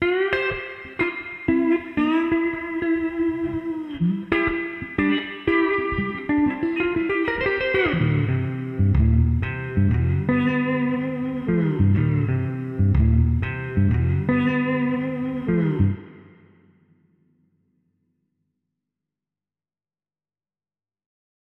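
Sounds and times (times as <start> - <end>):
slide guitar through Fairchild mono: 0.0 - 16.4.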